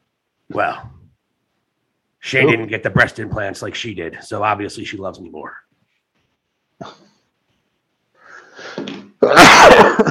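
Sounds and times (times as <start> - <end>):
speech: 0.5 - 1.0, 2.2 - 5.6, 6.8 - 7.1
person sneezing: 8.5 - 9.9.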